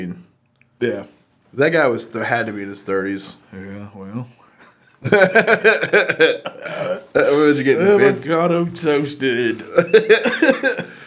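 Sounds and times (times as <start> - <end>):
speech: 0.0 - 4.4, 5.0 - 10.9
laughter: 5.0 - 8.2, 9.6 - 11.0
long loud gurgling burp: 6.6 - 7.2.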